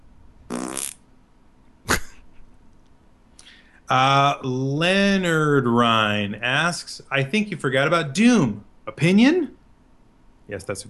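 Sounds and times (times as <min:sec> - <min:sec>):
buzzy mouth fart blown with the lips: 0:00.5 - 0:01.0
speech: 0:03.9 - 0:09.6, 0:10.5 - 0:10.8.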